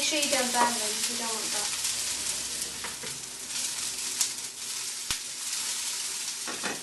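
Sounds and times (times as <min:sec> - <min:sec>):
onions sizzling as they fry in olive oil: 0:00.0 - 0:06.8
speech: 0:00.1 - 0:01.8.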